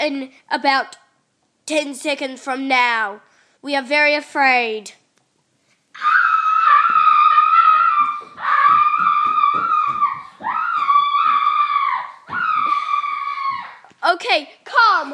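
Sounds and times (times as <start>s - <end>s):
speech: 0.0s - 1.0s, 1.7s - 5.0s, 14.1s - 15.1s
woman screaming in an office: 6.0s - 13.9s.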